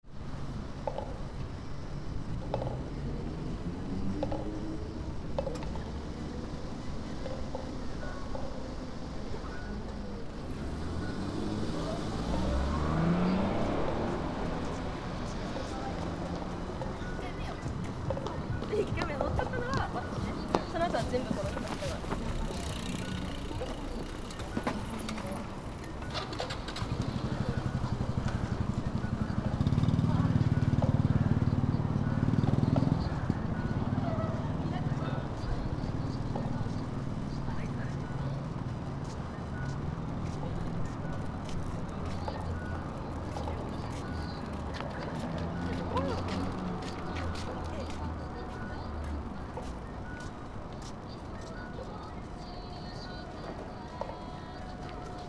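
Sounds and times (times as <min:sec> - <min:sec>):
park soundscape during preparations for a memorial event: 0:00.0 - 0:55.2.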